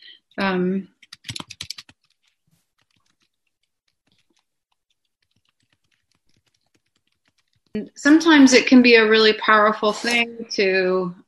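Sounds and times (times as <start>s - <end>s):
speech: 0.4s - 1.0s, 7.8s - 11.2s
computer keyboard typing: 0.9s - 8.0s.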